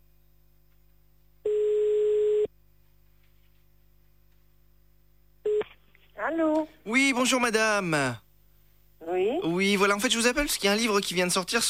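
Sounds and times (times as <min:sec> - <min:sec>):
ringback tone of an outgoing telephone call: 0:01.5 - 0:02.5
speech: 0:06.4 - 0:08.2, 0:09.1 - 0:11.6.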